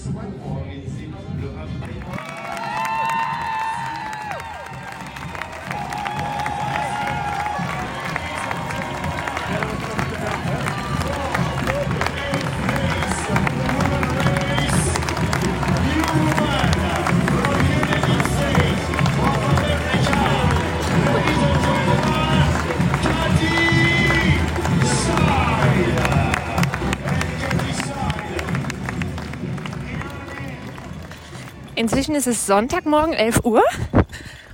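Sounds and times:
people clapping: 0:01.8 - 0:33.0
running footsteps on a dirt mountain trail during a race toward Chamonix: 0:02.4 - 0:29.7
crowd murmuring: 0:04.0 - 0:32.3
speech: 0:32.0 - 0:34.0.

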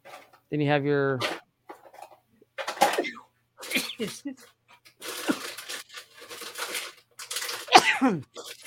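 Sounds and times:
speech: 0:00.5 - 0:01.4, 0:03.8 - 0:04.6, 0:08.0 - 0:08.5
person sneezing: 0:02.9 - 0:04.2, 0:07.7 - 0:08.3.

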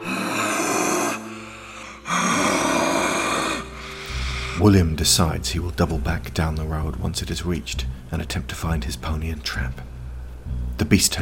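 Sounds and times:
guttural growls of a female creature: 0:00.0 - 0:03.9
female creature rasping and hissing: 0:00.0 - 0:04.6
speech: 0:04.6 - 0:10.0, 0:10.8 - 0:11.2.

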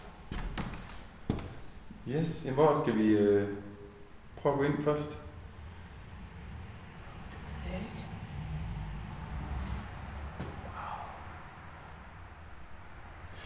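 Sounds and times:
speech: 0:02.1 - 0:03.7, 0:04.4 - 0:05.2
distant cars passing on a road: 0:03.6 - 0:13.4.

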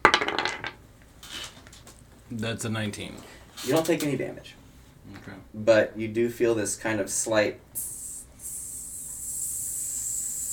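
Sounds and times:
speech: 0:02.3 - 0:07.9
voice imitating the sizzle of something burning into a hand: 0:07.8 - 0:10.5.

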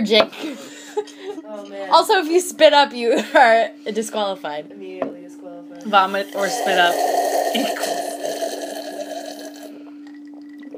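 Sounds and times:
speech: 0:00.0 - 0:07.9
person gulping water while drinking: 0:06.9 - 0:10.7.

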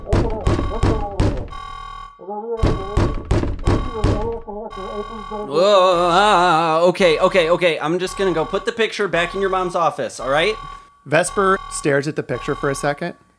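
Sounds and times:
heavy rapid banging on a door: 0:00.0 - 0:01.8, 0:02.6 - 0:04.5
speech: 0:02.3 - 0:03.0, 0:04.0 - 0:13.3.

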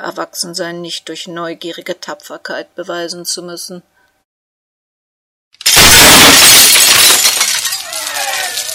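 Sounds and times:
speech: 0:00.0 - 0:03.9
glass shattering: 0:05.6 - 0:08.7.

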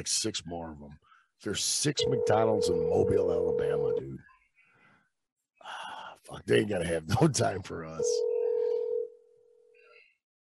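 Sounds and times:
speech: 0:00.0 - 0:04.3, 0:05.6 - 0:08.3
phone call ringback tone: 0:02.0 - 0:04.0, 0:08.2 - 0:09.2.

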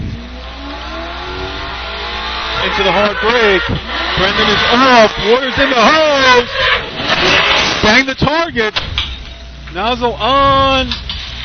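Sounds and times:
truck engine revving at a firefighting competition: 0:00.0 - 0:08.1
speech: 0:02.6 - 0:08.9, 0:09.7 - 0:11.1.

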